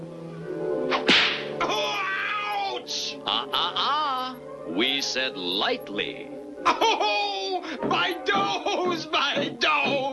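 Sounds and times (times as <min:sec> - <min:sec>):
sustained tonal musical background: 0:00.0 - 0:10.1
whip cracking: 0:00.9 - 0:01.6
speech: 0:02.9 - 0:03.9, 0:04.8 - 0:10.1
laughter: 0:06.6 - 0:07.8.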